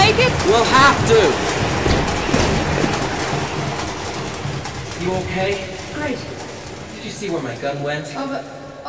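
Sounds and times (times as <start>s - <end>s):
speech: 0.5s - 1.5s, 5.0s - 6.4s, 7.0s - 8.6s
fast-moving train clattering on tracks: 1.8s - 3.8s.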